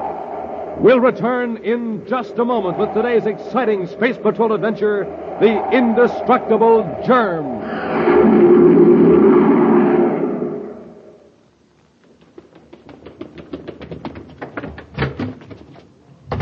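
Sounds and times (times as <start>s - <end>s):
rushing whoosh: 0.0s - 11.1s
speech: 0.8s - 8.8s
door knocking and rattling: 12.2s - 16.4s
door banging: 13.6s - 16.4s.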